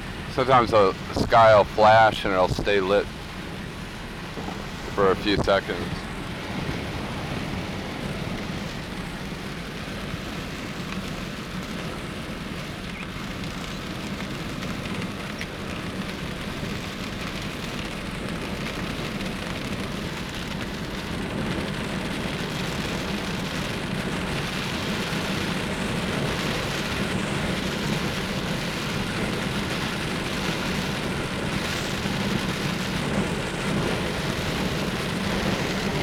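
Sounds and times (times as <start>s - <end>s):
gusting wind in a storm heard from a car: 0.0s - 36.0s
heavy rain heard from a car driving through a storm: 0.0s - 36.0s
speech: 0.4s - 3.2s, 5.0s - 6.0s.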